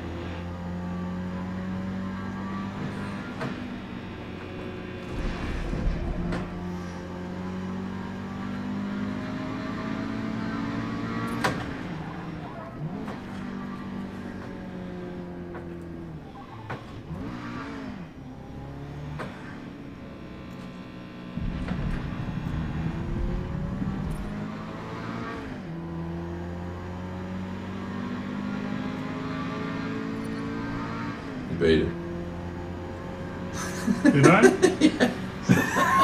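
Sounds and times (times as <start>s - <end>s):
car engine revving while being driven: 0.0s - 36.0s
thumps inside a driving car: 21.4s - 24.7s
laughter: 33.6s - 36.0s.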